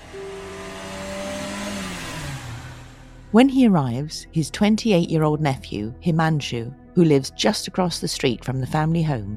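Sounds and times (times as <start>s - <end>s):
car engine roaring and revving while accelerating away: 0.0s - 3.4s
speech: 3.3s - 9.3s.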